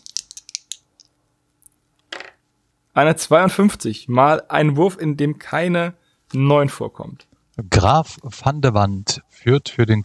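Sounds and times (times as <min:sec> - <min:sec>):
dice rolled in a game clattering and tumbling: 0:00.0 - 0:01.1, 0:02.1 - 0:02.4
speech: 0:03.0 - 0:10.0.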